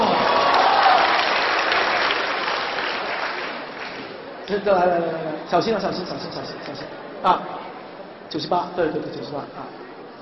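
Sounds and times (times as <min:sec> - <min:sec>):
crowd applauding at a lively event: 0:00.0 - 0:04.2
speech: 0:04.5 - 0:07.6, 0:08.3 - 0:09.8.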